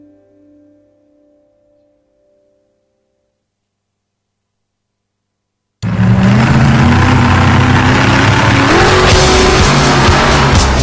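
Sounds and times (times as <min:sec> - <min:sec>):
car engines revving: 0:05.8 - 0:10.8
tires squealing and skidding: 0:05.8 - 0:10.8.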